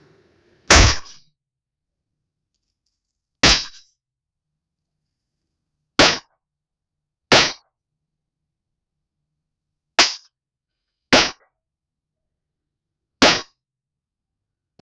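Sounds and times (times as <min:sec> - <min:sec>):
loud slap: 0:00.7 - 0:01.2, 0:03.4 - 0:03.8, 0:10.0 - 0:10.3, 0:11.2 - 0:11.4, 0:13.2 - 0:13.5.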